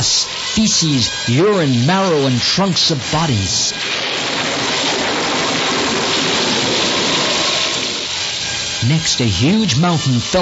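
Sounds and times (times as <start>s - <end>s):
speech: 0.6s - 4.0s, 8.8s - 10.3s
heavy rain pouring: 3.7s - 8.4s.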